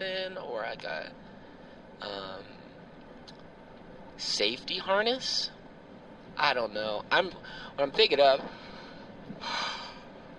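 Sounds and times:
speech: 0.0s - 1.3s, 2.0s - 2.6s, 4.2s - 5.6s, 6.4s - 8.7s, 9.3s - 9.8s
short breathy yawn: 9.4s - 10.1s.

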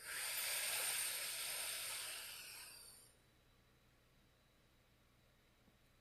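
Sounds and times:
deep breath in: 0.0s - 3.1s.

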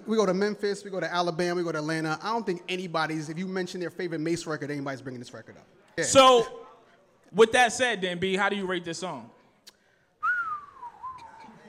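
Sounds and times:
speech: 0.1s - 6.6s, 7.3s - 9.4s
person whistling a long descending falling-bomb tone: 10.2s - 11.6s.

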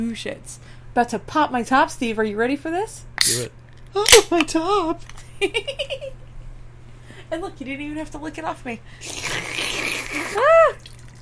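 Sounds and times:
speech: 0.0s - 6.2s, 7.3s - 9.7s
dark lager from a can pouring into a glass: 9.5s - 11.1s.

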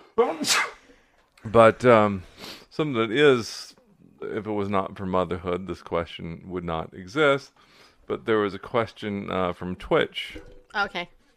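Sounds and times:
speech: 0.2s - 0.7s, 1.5s - 11.2s
person sneezing forcefully: 0.2s - 0.9s.

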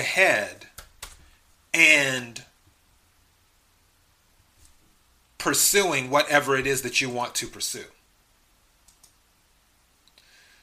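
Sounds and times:
speech: 0.0s - 0.7s, 1.7s - 2.5s, 5.4s - 8.0s
quiet hissy background: 0.0s - 10.6s
computer keyboard keys clicking while typing: 0.8s - 1.2s, 8.8s - 9.2s.

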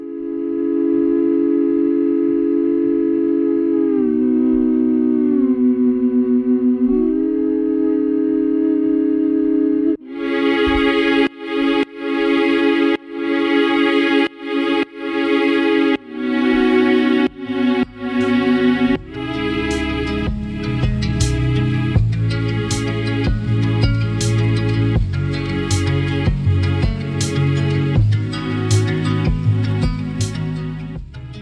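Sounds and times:
hummed tone: 0.0s - 31.4s
sustained strings side-chained to kick drum: 0.0s - 31.4s
kick drum beat: 19.0s - 19.2s, 20.3s - 21.3s, 22.0s - 22.3s, 23.3s - 24.0s, 25.0s - 25.4s, 26.3s - 27.1s, 28.0s - 28.2s, 29.3s - 30.0s, 31.0s - 31.2s.

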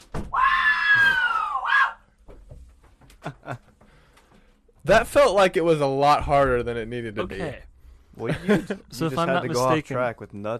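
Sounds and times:
man screaming: 0.3s - 2.0s
laughter: 3.2s - 3.7s, 8.2s - 9.7s
speech: 4.9s - 10.5s.

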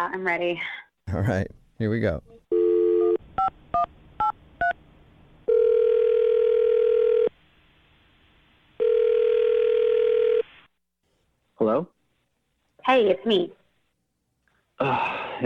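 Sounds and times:
speech: 0.0s - 2.3s, 11.6s - 12.0s, 12.8s - 13.6s, 14.8s - 15.4s
steady telephone dial tone: 2.5s - 3.2s, 5.5s - 7.3s, 8.8s - 10.5s.

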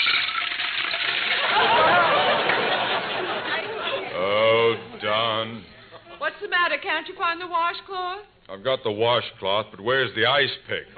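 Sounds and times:
water pouring from a pitcher into a washbowl: 0.0s - 1.4s
laughter: 1.3s - 6.3s
speech: 6.8s - 10.9s.

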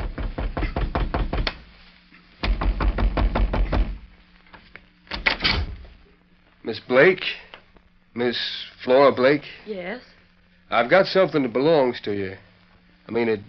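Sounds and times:
rapid firm knocking on a wooden front door in Bedford, Texas: 0.0s - 1.6s, 2.4s - 4.1s
speech: 6.7s - 7.4s, 8.2s - 10.1s, 10.7s - 12.4s, 13.1s - 13.4s.

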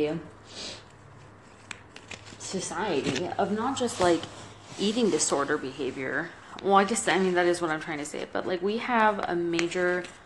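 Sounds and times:
speech: 0.0s - 0.8s, 2.5s - 10.2s
deck of playing cards being shuffled: 1.2s - 2.4s.

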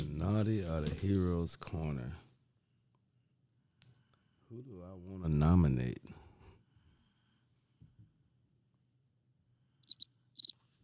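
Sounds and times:
speech: 0.2s - 2.2s, 4.5s - 6.2s
crickets chirping in short bright bursts: 9.8s - 10.8s.

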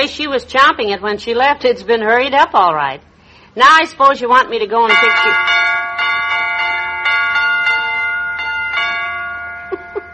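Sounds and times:
speech: 0.0s - 5.6s
musical doorbell chime melody: 4.9s - 10.1s.

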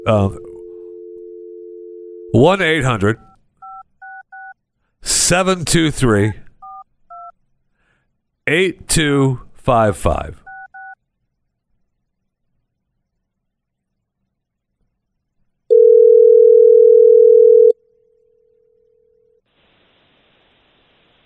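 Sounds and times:
people talking: 0.0s - 0.6s, 2.4s - 3.3s, 5.1s - 6.5s, 8.5s - 10.4s
steady two-tone telephone dial tone: 0.0s - 2.3s, 15.7s - 17.8s.

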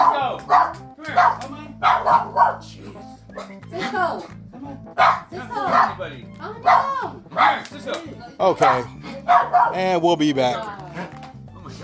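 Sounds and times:
dogs in a house barking: 0.0s - 2.7s, 3.3s - 7.8s, 8.4s - 10.1s
speech: 0.4s - 11.2s.

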